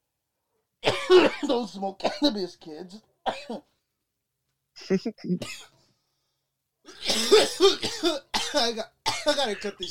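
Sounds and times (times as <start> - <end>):
person coughing into a microphone: 0.8 - 2.2, 6.9 - 9.7
speech: 1.1 - 3.7, 4.8 - 5.8, 6.9 - 9.8.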